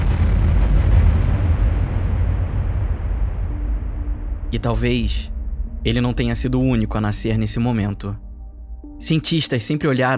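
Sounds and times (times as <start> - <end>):
huge booming explosion sound effect depicting the Big Bang: 0.0 - 5.9
deep sustained rumble: 0.0 - 9.0
speech: 4.5 - 8.3, 9.0 - 10.1.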